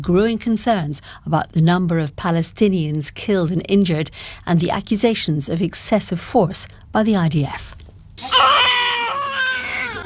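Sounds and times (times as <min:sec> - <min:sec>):
speech: 0:00.0 - 0:08.4
newborn baby crying in a hospital: 0:08.2 - 0:10.0.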